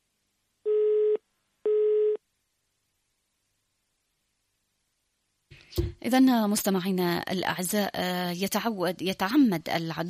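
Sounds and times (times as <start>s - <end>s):
telephone busy tone after dropped call: 0.7s - 2.2s
speech: 5.7s - 10.0s.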